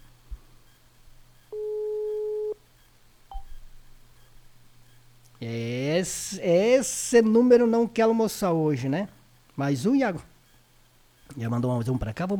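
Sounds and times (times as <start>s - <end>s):
low electrical hum: 0.0s - 12.3s
telephone ringing tone on an outgoing call: 1.5s - 2.6s
speech: 5.4s - 10.3s, 11.3s - 12.3s.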